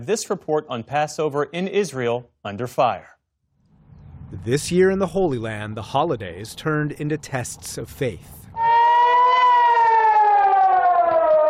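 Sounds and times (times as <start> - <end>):
speech: 0.0 - 3.2, 4.4 - 8.4
air raid warning siren wailing: 8.5 - 11.4.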